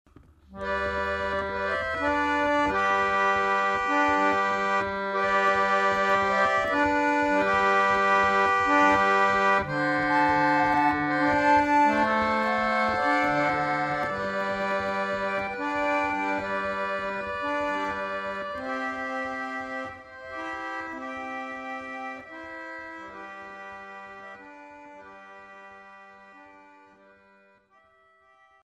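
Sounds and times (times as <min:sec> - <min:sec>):
roller organ playing a Christmas carol: 0:00.5 - 0:28.6.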